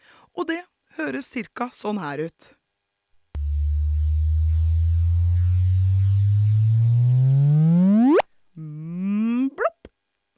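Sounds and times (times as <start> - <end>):
speech: 0.4 - 2.6
sonified gravitational-wave chirp from two black holes merging: 3.4 - 8.3.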